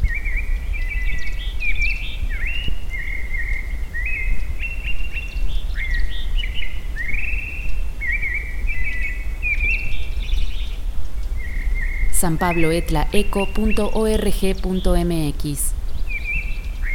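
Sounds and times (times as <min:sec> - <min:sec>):
birds singing in a high forest at over 3,000 metres altitude: 0:00.0 - 0:16.9
birds chirping: 0:08.2 - 0:16.9
speech: 0:12.2 - 0:15.8.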